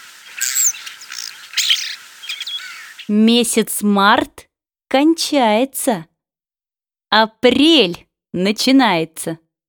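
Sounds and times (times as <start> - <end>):
starling singing in scratchy chattering phrases with thin whistles: 0.0 - 3.2
speech: 3.1 - 6.1, 7.1 - 9.4.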